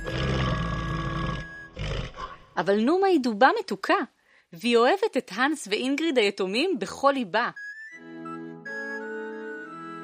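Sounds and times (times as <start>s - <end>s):
female polar bear growling in a forest in Norway: 0.0s - 2.4s
speech: 2.6s - 8.2s.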